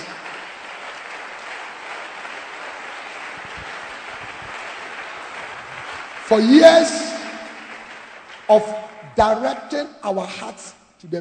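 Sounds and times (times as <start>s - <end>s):
large crowd applauding: 0.0s - 9.6s
speech: 6.3s - 7.0s, 8.5s - 11.2s.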